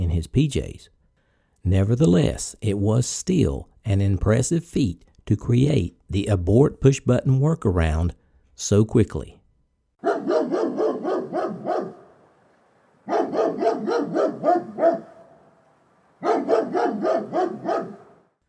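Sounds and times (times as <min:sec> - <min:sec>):
speech: 0:00.1 - 0:01.0, 0:01.6 - 0:09.4
dog barking loudly: 0:10.0 - 0:12.2, 0:13.1 - 0:15.5, 0:16.2 - 0:18.3.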